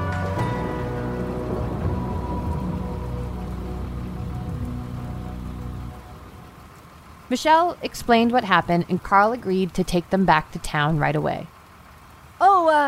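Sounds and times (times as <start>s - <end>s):
low tonal hum: 0.0s - 7.3s
steady rain pattering on a hard surface: 0.0s - 12.8s
speech: 7.3s - 11.5s.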